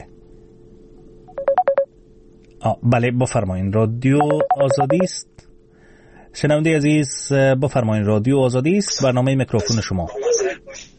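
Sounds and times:
telephone signal tones from an incoming call to a phone-in line: 0:01.3 - 0:01.9, 0:04.2 - 0:05.1
speech: 0:02.6 - 0:05.5, 0:06.4 - 0:10.5.

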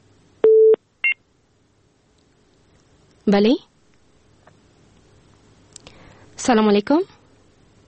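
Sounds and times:
telephone busy tone after a dropped call: 0:00.4 - 0:00.8
speech: 0:03.3 - 0:03.7, 0:06.5 - 0:07.2.

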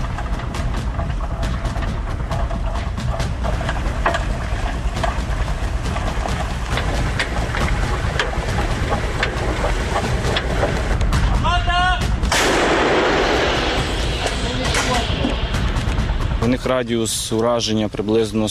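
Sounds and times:
constant roar: 0:00.0 - 0:17.4
heavy artillery fire blasts: 0:12.2 - 0:15.8
speech: 0:16.7 - 0:18.5.

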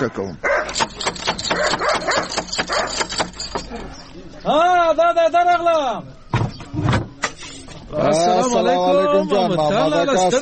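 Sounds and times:
speech: 0:00.0 - 0:03.0, 0:03.7 - 0:06.1, 0:07.9 - 0:10.4
fierce biting dog barking behind a door: 0:00.4 - 0:03.4.

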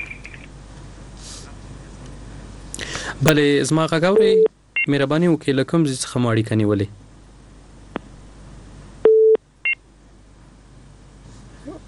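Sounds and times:
speech: 0:02.8 - 0:07.0
telephone tones from a dropped call: 0:09.1 - 0:09.8.

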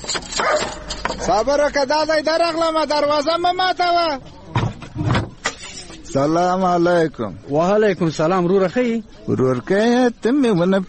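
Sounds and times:
dog barking at a house: 0:00.3 - 0:00.9
speech: 0:01.3 - 0:04.6, 0:06.1 - 0:10.8.

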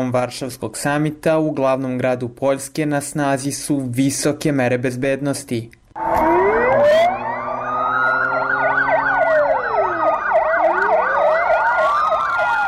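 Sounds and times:
speech: 0:00.0 - 0:05.8
police car siren during a city security patrol in Warsaw: 0:06.0 - 0:12.6.

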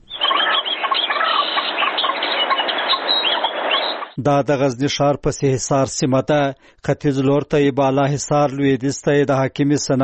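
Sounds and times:
dense chorus of many birds singing and chattering in a park in Ghazni, Afghanistan: 0:00.0 - 0:04.2
speech: 0:04.2 - 0:10.0.

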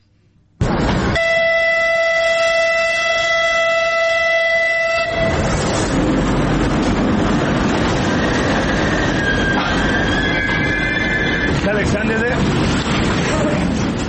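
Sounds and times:
Kyiv to Mykolaiv passenger train wheels rumbling on rails in Ukraine: 0:00.5 - 0:14.0
passenger train horn blast: 0:01.2 - 0:05.7.

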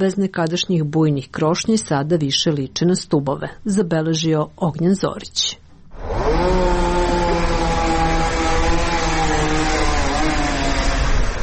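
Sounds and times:
speech: 0:00.0 - 0:06.8
chainsaw cutting plane tree branches in a city street: 0:05.9 - 0:11.4.

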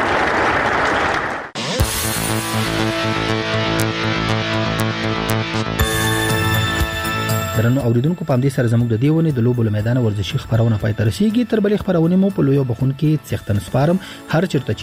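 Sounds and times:
applause for youth sports displays: 0:00.0 - 0:01.6
music with sustained tones: 0:01.6 - 0:14.8
speech: 0:07.6 - 0:14.8.

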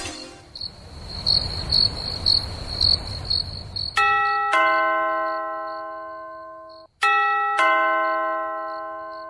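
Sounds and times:
crickets chirping at night: 0:00.4 - 0:04.5, 0:05.2 - 0:07.0, 0:08.0 - 0:09.2
doorbell ding-dong chimes at night: 0:04.0 - 0:09.2.

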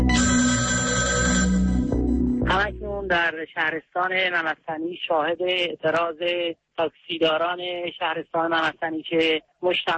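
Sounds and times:
telephone ringing on a radio station's voicemail line: 0:00.0 - 0:02.0
speech: 0:03.1 - 0:09.9.

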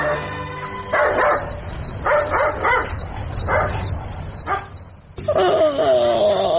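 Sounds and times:
insects chirring: 0:00.2 - 0:06.4.

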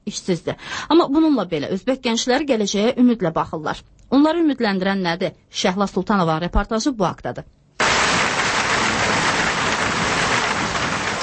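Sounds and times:
speech: 0:00.1 - 0:07.6
heavy rain in Baku: 0:07.8 - 0:11.2.

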